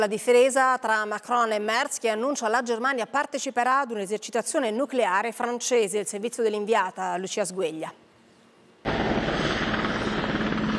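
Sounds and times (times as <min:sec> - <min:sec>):
speech: 0:00.0 - 0:08.0
military helicopter engine and rotor noise: 0:08.9 - 0:10.7.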